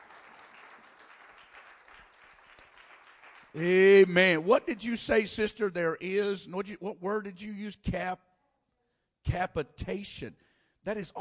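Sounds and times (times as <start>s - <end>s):
audience clapping: 0.0s - 4.5s
speech: 3.6s - 8.3s, 9.3s - 11.1s.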